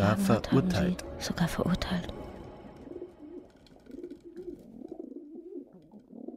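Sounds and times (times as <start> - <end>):
speech: 0.1 - 2.2
pigeons cooing at a main railway station: 2.7 - 6.3.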